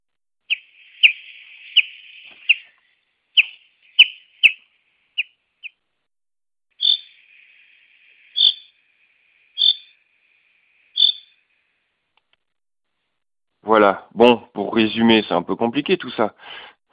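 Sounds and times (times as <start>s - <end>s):
bird giving sharp high call notes: 0.5s - 5.8s, 6.8s - 11.4s
speech: 13.7s - 16.7s.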